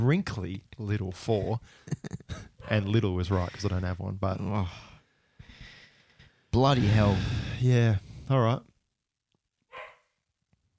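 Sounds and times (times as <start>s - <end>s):
speech: 0.0s - 4.9s, 6.5s - 8.7s
dog barking: 2.6s - 3.6s, 9.7s - 10.1s
dog yipping: 9.7s - 10.1s.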